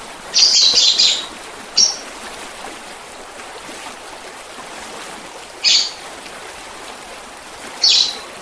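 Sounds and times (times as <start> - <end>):
Oriental magpie-robin song: 0.4 - 2.0, 5.6 - 6.0, 7.8 - 8.2.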